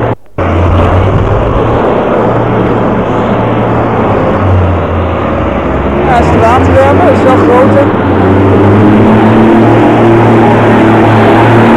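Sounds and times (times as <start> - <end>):
heavy container truck engine rumbling while driving slowly into a street: 0.0 - 11.7
steady hum: 0.0 - 11.7.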